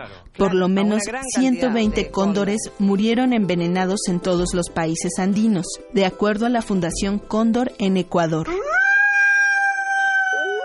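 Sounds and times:
speech: 0:00.0 - 0:08.6
Iberian wolf howling: 0:08.5 - 0:10.6.

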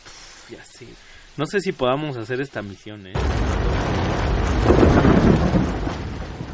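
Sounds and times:
speech: 0:00.5 - 0:04.0
deep rumble of thunder: 0:03.2 - 0:06.5
heavy rain in Vargas: 0:03.2 - 0:06.5.

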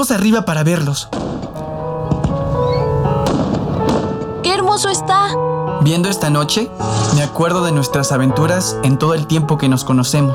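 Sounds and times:
speech: 0:00.0 - 0:01.3, 0:04.8 - 0:10.3
fireworks exploding: 0:01.1 - 0:04.4.

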